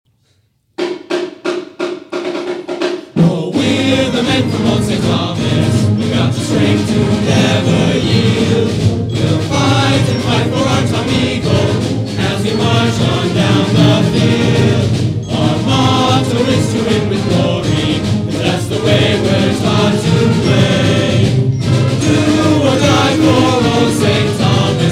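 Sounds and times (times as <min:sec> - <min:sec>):
fight song: 0:00.8 - 0:24.9
choir singing: 0:03.1 - 0:24.9.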